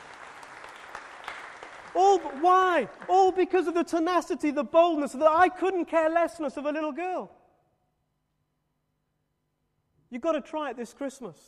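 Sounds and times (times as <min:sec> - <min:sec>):
crowd clapping: 0:00.0 - 0:03.8
speech: 0:02.0 - 0:07.4, 0:10.1 - 0:11.4.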